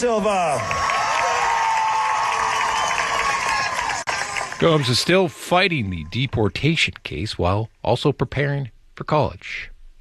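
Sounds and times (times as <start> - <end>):
speech: 0.0 - 1.0, 4.6 - 9.9
shouts and whoops: 0.0 - 5.4
large crowd cheering and applauding: 0.0 - 6.4.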